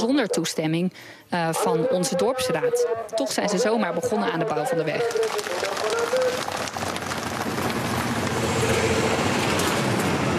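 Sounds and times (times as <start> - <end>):
speech: 0.0 - 6.0
heavy trucks driving past on an unpaved dirt road beside maize fields: 6.4 - 10.3.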